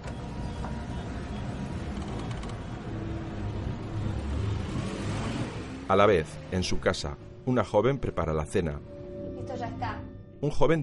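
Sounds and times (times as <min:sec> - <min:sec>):
van engine pulling away and driving toward a gas station: 0:00.0 - 0:06.4
broad road noise: 0:00.0 - 0:10.2
speech: 0:05.9 - 0:08.9, 0:09.5 - 0:10.8.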